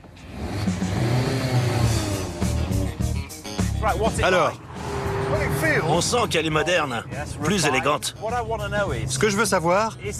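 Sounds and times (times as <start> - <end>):
Mazda MX-5 rear-wheel-drive sports coupé with small engine revving as it pulls away: 0.1 - 3.2, 4.0 - 6.6
speech: 3.8 - 4.7, 5.3 - 10.1.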